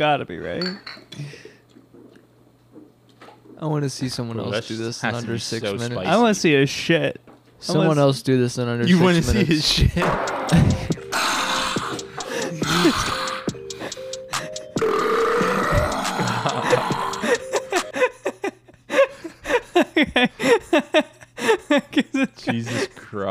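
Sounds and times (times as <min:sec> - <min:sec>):
speech: 0:00.0 - 0:01.5, 0:03.6 - 0:10.9
long drawn-out burps: 0:10.5 - 0:13.6, 0:14.7 - 0:17.9
person gasping and chuckling: 0:10.5 - 0:14.8, 0:15.4 - 0:23.0.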